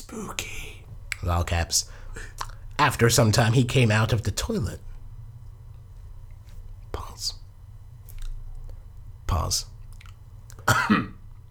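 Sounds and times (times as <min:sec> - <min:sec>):
faint low hum: 0:00.0 - 0:11.5
speech: 0:00.1 - 0:00.6, 0:01.2 - 0:04.9, 0:07.2 - 0:07.4, 0:09.4 - 0:09.7, 0:10.7 - 0:11.2
person coughing: 0:10.6 - 0:11.2.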